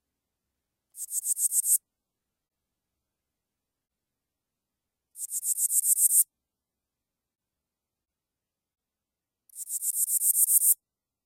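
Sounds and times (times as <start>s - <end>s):
Broad-winged bush katydid rasping and ticking: 1.0s - 1.8s, 5.2s - 6.2s, 9.5s - 10.8s.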